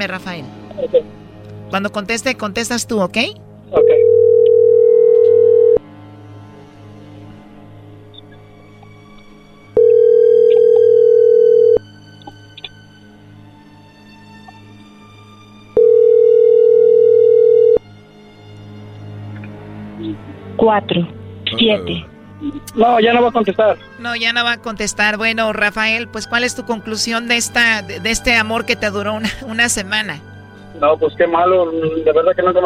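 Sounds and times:
speech: 0.0 - 4.2, 20.6 - 32.6
ringback tone of an outgoing telephone call: 3.8 - 5.8, 9.8 - 11.8, 15.8 - 17.8.

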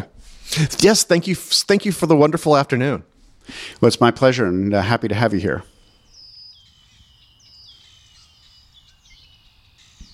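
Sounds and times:
speech: 0.5 - 5.7
chorus of many birds chirping and trilling outdoors: 5.2 - 10.1.

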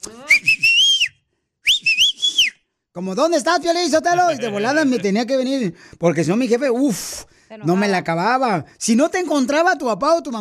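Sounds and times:
loud piercing two-finger family calling whistle: 0.3 - 2.7
speech: 3.0 - 10.3
laughter: 4.0 - 5.4.

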